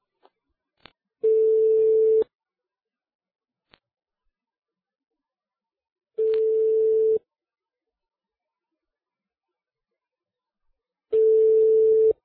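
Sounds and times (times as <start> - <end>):
telephone ringing tone heard down the line on a call: 1.2 - 2.2, 6.2 - 7.2, 11.2 - 12.2.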